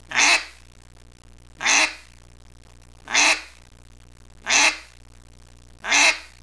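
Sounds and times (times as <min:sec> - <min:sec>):
hen: 0:00.0 - 0:00.6, 0:01.6 - 0:02.1, 0:03.0 - 0:03.6, 0:04.4 - 0:04.9, 0:05.8 - 0:06.4.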